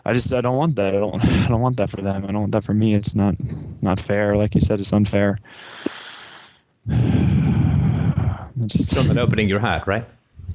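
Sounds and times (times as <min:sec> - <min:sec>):
speech: 0:00.0 - 0:05.9, 0:06.9 - 0:07.5, 0:08.6 - 0:10.2
person panting heavily: 0:05.5 - 0:08.5.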